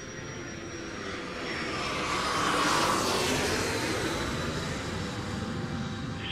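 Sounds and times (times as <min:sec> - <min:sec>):
airplane passing overhead with engine roar: 0:00.0 - 0:06.3.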